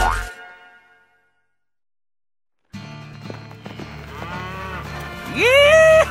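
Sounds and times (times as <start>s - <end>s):
cattle mooing on a cattle ranch: 4.1s - 5.9s.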